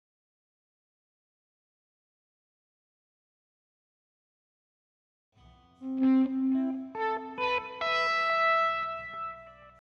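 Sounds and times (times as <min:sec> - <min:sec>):
funk melody: 0:05.8 - 0:09.8.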